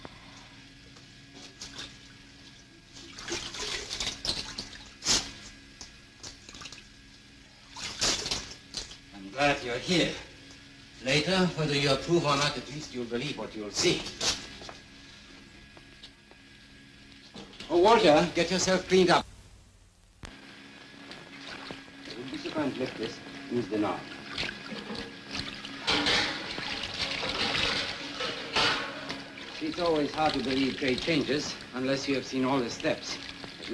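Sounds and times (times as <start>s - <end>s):
water coming down in hissing bursts: 3.0s - 4.8s, 24.2s - 31.7s
speech: 9.7s - 10.2s, 11.1s - 14.2s, 17.9s - 19.3s, 22.8s - 24.1s, 29.8s - 33.7s.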